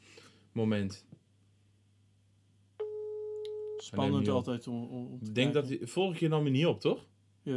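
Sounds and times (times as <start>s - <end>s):
faint low hum: 0.2s - 7.5s
speech: 0.6s - 1.2s, 3.9s - 7.5s
telephone busy tone after a rejected call: 2.8s - 3.9s.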